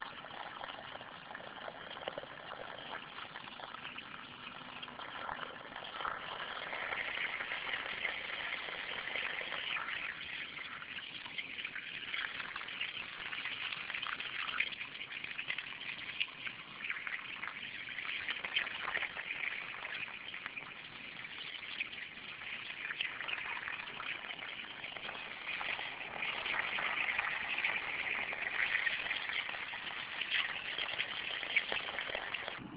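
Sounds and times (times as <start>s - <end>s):
water from a hose: 0.0s - 32.6s.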